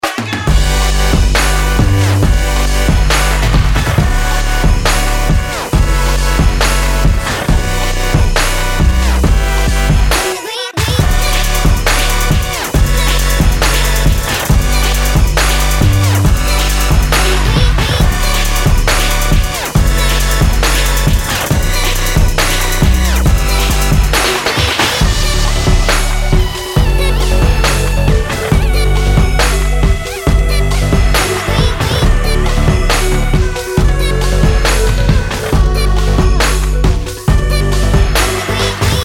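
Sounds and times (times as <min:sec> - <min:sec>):
trap remix: 0:00.0 - 0:39.0.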